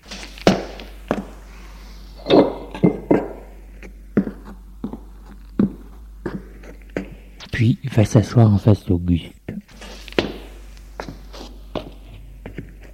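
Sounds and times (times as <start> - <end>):
low steady hum: 0.0 - 12.9
glass bottle and two glasses clinking at a bar counter: 2.2 - 3.3
speech: 7.6 - 9.4.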